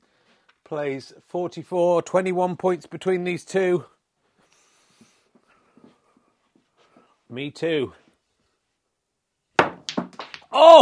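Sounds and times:
speech: 0.7 - 4.0, 7.3 - 8.0, 10.6 - 10.7
snooker cue ball striking the balls: 9.6 - 10.6.

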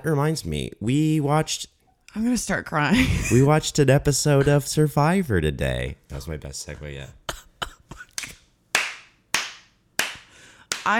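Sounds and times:
speech: 0.0 - 7.2
hand claps: 8.0 - 10.9.

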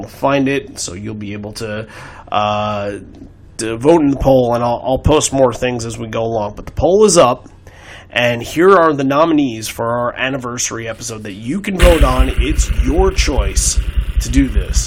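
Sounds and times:
speech: 0.0 - 14.8
improvised drum roll: 11.8 - 14.8.

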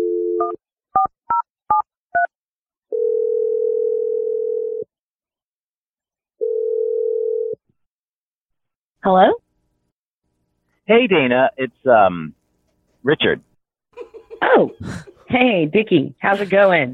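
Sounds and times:
phone dial tone: 0.0 - 0.6, 2.9 - 4.9, 6.4 - 7.6
long steady phone ringing tones: 2.9 - 4.9, 6.4 - 7.6
speech: 9.1 - 9.4, 10.9 - 12.4, 13.0 - 13.5, 14.6 - 16.9
laughter: 14.0 - 15.3.

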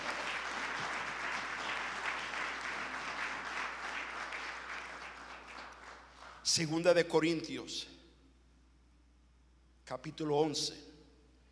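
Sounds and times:
audience applauding loudly: 0.0 - 6.5
speech: 6.5 - 8.0, 9.9 - 10.9.

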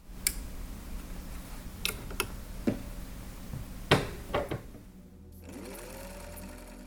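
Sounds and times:
faint low hum: 0.0 - 6.8
sewing machine clicking and clunking: 5.5 - 6.8.

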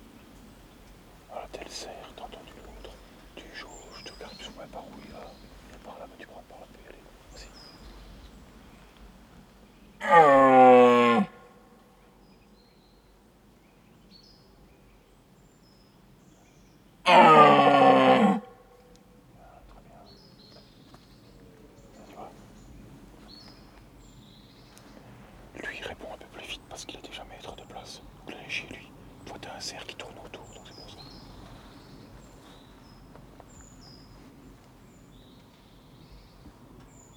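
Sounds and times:
quiet outdoor background: 0.0 - 37.1
speech: 1.7 - 2.4, 3.6 - 7.8
red deer stag bellowing during the rut: 10.0 - 11.5, 17.1 - 18.7.

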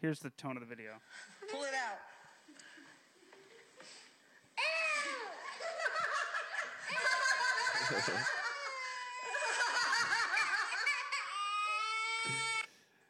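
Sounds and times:
speech: 0.0 - 2.2, 7.9 - 8.4
girl wailing and sobbing: 4.6 - 6.2, 8.2 - 12.7
people laughing and snickering: 5.0 - 11.9.

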